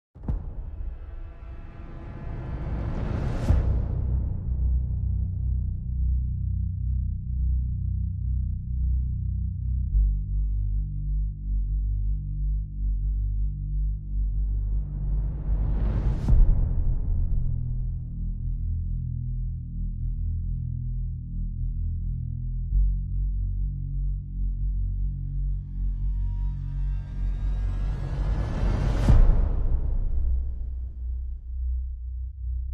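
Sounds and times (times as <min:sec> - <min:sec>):
bass: 0:00.0 - 0:32.7
drums: 0:00.2 - 0:05.8, 0:14.5 - 0:18.5, 0:27.0 - 0:31.6.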